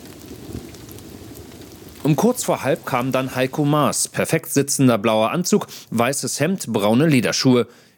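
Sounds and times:
heavy rain falling: 0.0 - 4.3
speech: 2.0 - 7.9.

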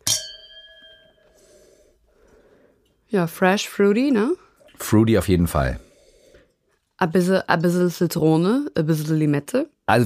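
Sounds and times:
glasses of dry organic vegan white wine clinking in a toast: 0.0 - 1.4
speech: 3.1 - 5.9, 7.0 - 10.0.

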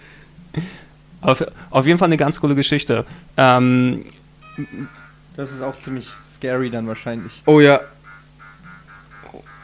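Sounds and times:
steady low buzzing drone: 0.0 - 9.6
speech: 0.6 - 8.0
Atari Pac-Man video game quick repeating electronic chirp: 4.4 - 9.6.

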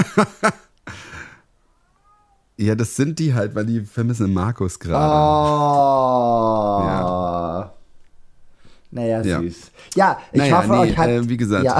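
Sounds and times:
speech: 0.0 - 1.0, 2.6 - 7.7, 8.9 - 11.7
pet cat meowing: 1.6 - 2.5.

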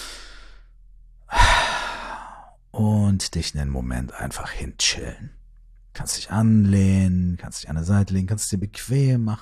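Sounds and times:
deep breath in and out: 0.0 - 2.6
speech: 2.8 - 5.4, 6.0 - 9.3.

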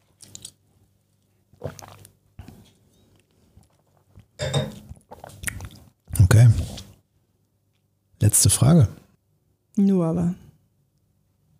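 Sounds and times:
crunchy chewing and biting of food: 0.0 - 7.0
speech: 8.3 - 9.0, 9.8 - 10.4.

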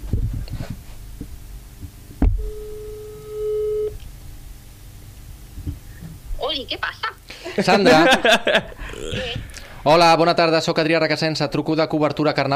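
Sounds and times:
ringback tone on an outgoing phone call: 2.4 - 3.9
speech: 6.6 - 8.8, 9.8 - 12.5
laughter: 7.4 - 9.4.

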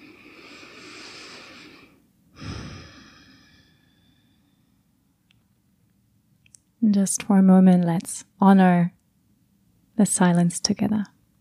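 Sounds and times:
deep breathing during a guided meditation: 0.0 - 4.9
speech: 6.8 - 9.0, 10.0 - 11.1.

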